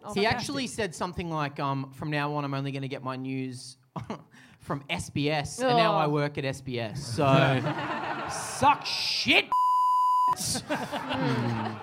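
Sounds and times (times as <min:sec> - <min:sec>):
speech: 0:00.0 - 0:09.6, 0:10.4 - 0:11.8
laughter: 0:07.2 - 0:09.2, 0:10.4 - 0:11.8
high-pitched censor beep over a name: 0:09.5 - 0:10.4.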